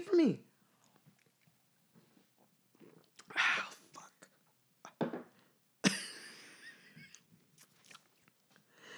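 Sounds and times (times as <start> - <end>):
speech: 0.2 - 0.4
person coughing: 5.9 - 6.1.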